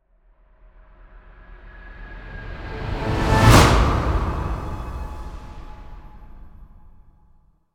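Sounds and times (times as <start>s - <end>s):
swell into impact: 1.6s - 7.0s.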